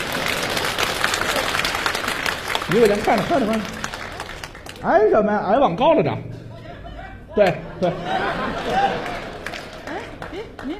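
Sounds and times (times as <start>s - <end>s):
audience applause at a comedy stage show: 0.0s - 5.0s, 8.4s - 10.7s
speech: 2.7s - 3.8s, 4.8s - 6.3s, 7.4s - 9.2s
laughter: 6.5s - 10.7s.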